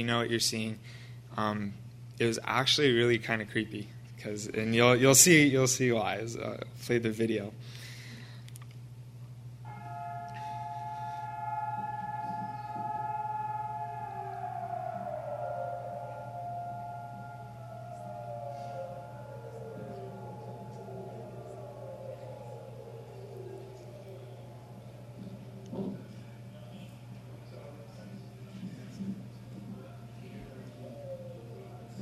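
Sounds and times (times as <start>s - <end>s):
speech: 0.0s - 7.8s
low hum: 0.0s - 32.0s
remembrance day siren wailing: 9.7s - 32.0s.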